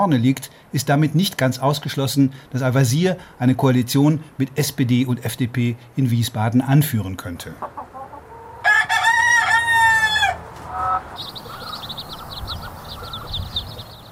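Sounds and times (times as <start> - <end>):
speech: 0.0 - 7.9
faint outdoor hum: 0.0 - 14.0
chickens clucking by disused railway tracks in Groß-Bieberau Odenwald: 7.4 - 14.0
rooster crowing: 8.4 - 13.4.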